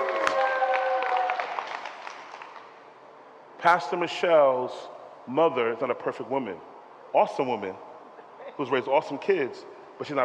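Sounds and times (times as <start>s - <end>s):
crowd applauding: 0.0s - 2.8s
speech: 3.6s - 7.9s, 8.6s - 10.2s.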